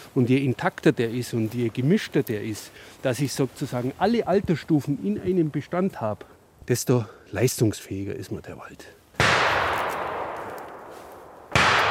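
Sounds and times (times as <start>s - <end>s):
speech: 0.2s - 9.0s
hunting gunshots echoing through a forest: 9.2s - 11.8s.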